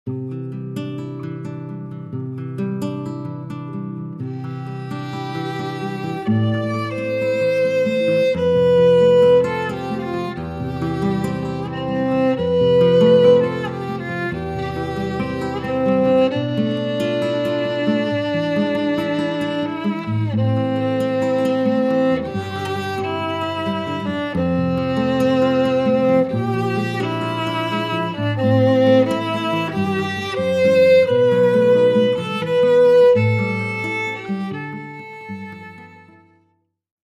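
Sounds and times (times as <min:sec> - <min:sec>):
guitar: 0:00.0 - 0:36.7
violin: 0:04.2 - 0:36.5.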